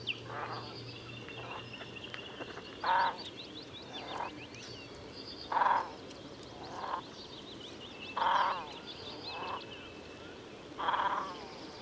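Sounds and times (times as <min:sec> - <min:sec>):
great crested grebe croaking calls: 0:00.0 - 0:00.8, 0:01.4 - 0:01.8, 0:02.8 - 0:04.4, 0:05.5 - 0:07.1, 0:08.1 - 0:09.8, 0:10.8 - 0:11.8.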